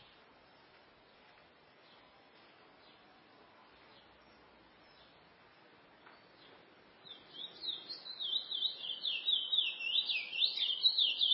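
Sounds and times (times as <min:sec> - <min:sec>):
steady background hiss: 0:00.0 - 0:11.3
chestnut-bellied seed finch singing whistled slurs: 0:07.1 - 0:11.3.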